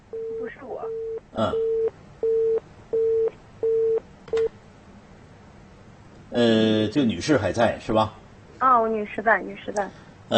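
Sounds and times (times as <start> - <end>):
phone line noise: 0.1 - 4.0
telephone busy tone after a dropped call: 0.1 - 4.5
speech: 0.5 - 1.7, 6.4 - 10.3.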